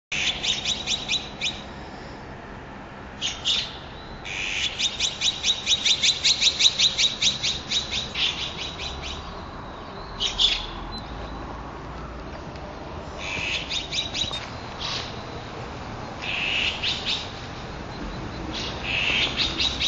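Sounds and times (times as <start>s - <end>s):
long-tailed tit: 0.1s - 1.7s, 3.2s - 11.5s, 13.2s - 19.8s.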